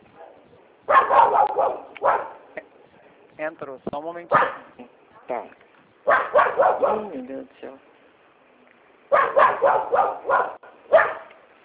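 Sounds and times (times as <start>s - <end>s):
small female dog barking: 0.2s - 2.5s, 4.3s - 4.8s, 6.0s - 7.2s, 9.1s - 11.4s
speech: 3.4s - 5.6s, 6.6s - 7.9s, 9.2s - 10.6s.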